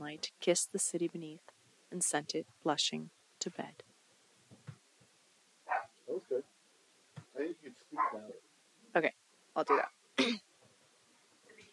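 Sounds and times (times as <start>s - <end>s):
speech: 0.1s - 3.9s, 7.4s - 8.4s, 9.0s - 10.4s
dogs barking with sharp yips and woofs: 5.7s - 6.0s, 7.9s - 8.4s, 9.7s - 9.9s.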